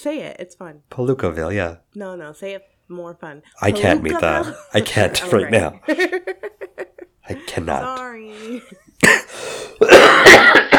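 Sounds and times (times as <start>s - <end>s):
speech: 0.0s - 10.7s
person clearing throat: 9.0s - 10.7s
person coughing: 9.0s - 10.7s.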